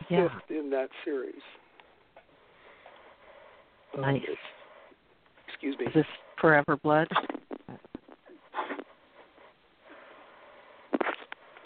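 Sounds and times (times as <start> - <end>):
speech: 0.1 - 1.6, 3.9 - 4.6, 5.6 - 7.4
person sniffling from a cold: 8.2 - 9.0.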